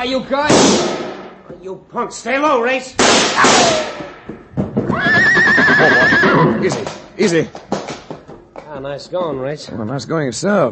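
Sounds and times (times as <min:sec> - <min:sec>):
speech: 0:00.0 - 0:05.2, 0:05.8 - 0:07.8, 0:08.8 - 0:10.7
horse neighing: 0:04.8 - 0:06.9.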